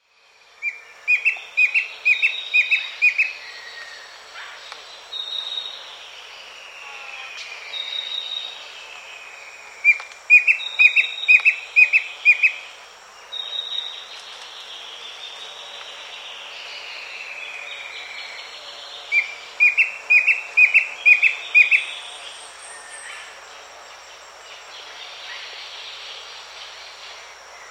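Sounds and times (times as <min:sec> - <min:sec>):
Klage's Antwren calling: 0:00.6 - 0:05.8, 0:09.9 - 0:12.7, 0:17.0 - 0:23.4.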